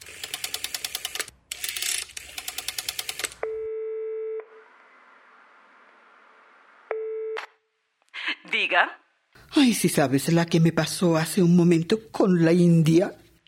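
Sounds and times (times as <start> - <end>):
rotary telephone dial clicking: 0.0 - 3.4
telephone ringing tone over the line: 3.4 - 4.6
speech: 8.5 - 13.2.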